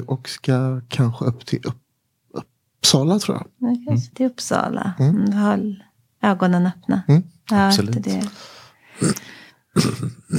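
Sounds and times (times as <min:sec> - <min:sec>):
speech: 0:00.0 - 0:09.2, 0:09.8 - 0:10.3
sharp audible intake of breath before speaking: 0:08.3 - 0:09.6.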